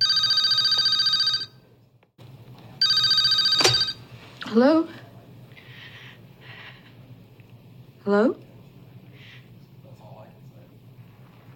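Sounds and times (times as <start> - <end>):
telephone ringing with bright trilling bell tone: 0.0 - 1.6, 2.8 - 4.1
speech: 4.5 - 5.0, 8.1 - 8.4.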